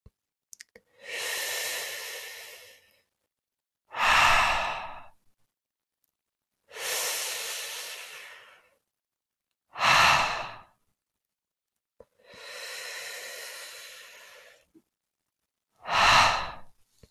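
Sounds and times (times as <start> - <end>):
deep breaths exhaled almost silently through lips rounded on an H sound: 0.9 - 3.1, 3.9 - 5.2, 6.7 - 8.8, 9.8 - 10.8, 12.0 - 14.7, 15.8 - 16.8.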